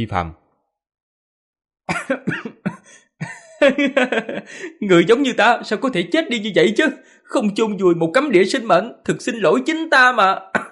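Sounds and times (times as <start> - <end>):
speech: 0.0 - 0.4, 3.6 - 10.7
young man coughing up blood: 1.9 - 3.6
laughter: 1.9 - 5.4, 10.6 - 10.7.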